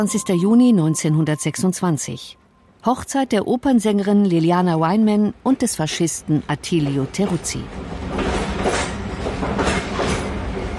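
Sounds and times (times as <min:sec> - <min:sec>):
speech: 0:00.0 - 0:08.1
train rattling along the tracks at night from Rome towards the north: 0:06.6 - 0:10.7.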